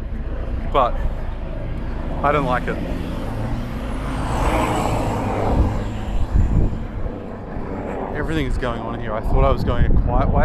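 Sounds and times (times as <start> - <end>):
loud ute engine roaring past: 0.4 - 9.2
speech: 0.7 - 1.2, 2.2 - 3.0, 8.2 - 10.4.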